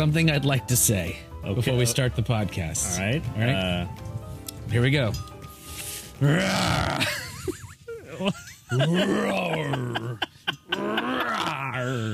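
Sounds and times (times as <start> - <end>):
speech: 0.0 - 4.1, 4.7 - 5.3, 6.2 - 7.6, 8.2 - 10.2, 11.9 - 12.1
man imitating a growling roar: 6.2 - 7.1, 8.8 - 12.1
laughter: 6.7 - 12.1.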